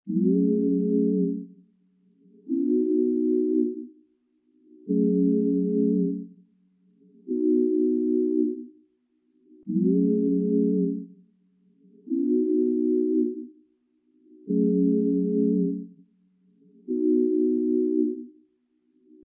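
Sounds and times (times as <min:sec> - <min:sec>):
Afro melody pad loop in C minor: 0:00.1 - 0:01.4, 0:02.4 - 0:03.9, 0:04.8 - 0:06.2, 0:07.2 - 0:08.7, 0:09.6 - 0:11.1, 0:12.0 - 0:13.5, 0:14.4 - 0:15.8, 0:16.8 - 0:18.3.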